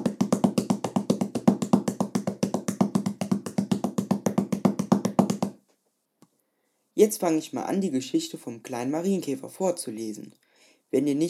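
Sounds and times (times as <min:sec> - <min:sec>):
two hands drumming rapidly on a tabletop: 0:00.0 - 0:05.6
speech: 0:07.0 - 0:11.2.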